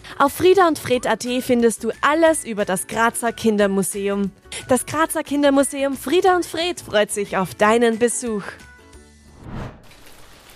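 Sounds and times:
speech: 0:00.2 - 0:08.7
rain falling: 0:09.8 - 0:10.5.

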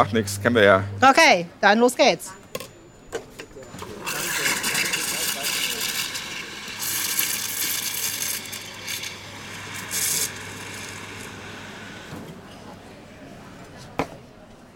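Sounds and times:
low hum: 0:00.0 - 0:01.6
speech: 0:00.0 - 0:02.4
espresso machine steam wand heating oat milk: 0:04.1 - 0:12.1.

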